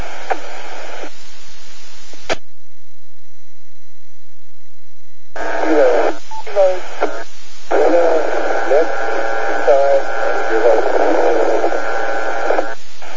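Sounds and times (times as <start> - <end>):
radio static: 0.0 - 2.4, 5.3 - 13.1
garbled voices of two colliding radio transmissions: 5.4 - 13.1.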